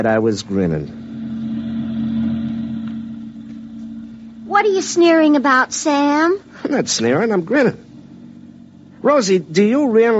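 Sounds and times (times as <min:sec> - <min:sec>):
speech: 0:00.0 - 0:01.0, 0:04.6 - 0:07.8, 0:09.0 - 0:10.1
truck engine running: 0:00.0 - 0:10.1.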